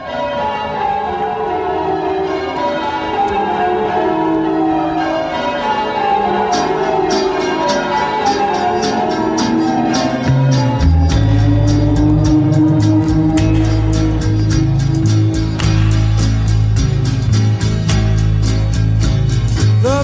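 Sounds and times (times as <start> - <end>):
bells ringing with rich overlapping tones: 0.0 - 17.7
bright rhythmic metallic strikes: 6.0 - 20.0.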